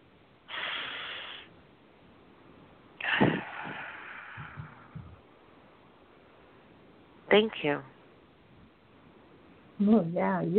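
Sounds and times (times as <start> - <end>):
deep breath: 0.5 - 1.5, 3.0 - 5.2
speech: 7.3 - 7.9, 9.8 - 10.5.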